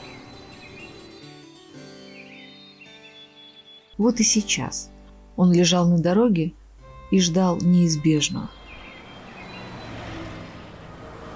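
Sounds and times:
speech: 0:04.0 - 0:08.6
road traffic with cars rushing past: 0:06.6 - 0:11.3.

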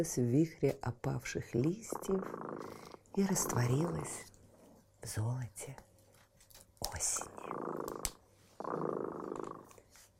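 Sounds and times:
speech: 0:00.0 - 0:04.3, 0:05.0 - 0:05.9, 0:06.8 - 0:08.9
cat purring: 0:01.5 - 0:05.1, 0:07.0 - 0:09.8.

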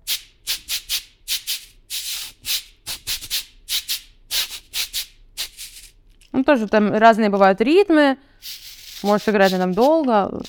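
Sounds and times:
speech: 0:06.4 - 0:08.3, 0:09.0 - 0:10.4
cabasa with metal bead chains scraping: 0:08.4 - 0:10.4.

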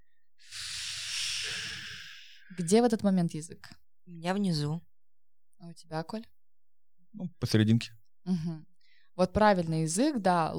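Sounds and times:
air hissing out through clenched teeth held in a smile: 0:00.4 - 0:02.5
speech: 0:02.6 - 0:04.9, 0:05.6 - 0:06.4, 0:07.1 - 0:10.5.

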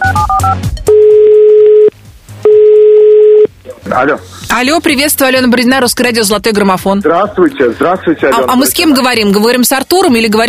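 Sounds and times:
telephone keypad dialing beeps: 0:00.0 - 0:01.9
long steady telephone ringing tones of an outgoing call: 0:00.0 - 0:03.5
speech: 0:04.0 - 0:10.4.

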